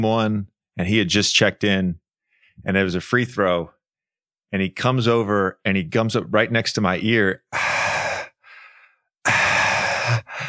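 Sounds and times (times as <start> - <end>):
speech: 0.0 - 2.0, 2.6 - 3.8, 4.5 - 7.7
voice imitating heavy breathing: 7.5 - 10.4.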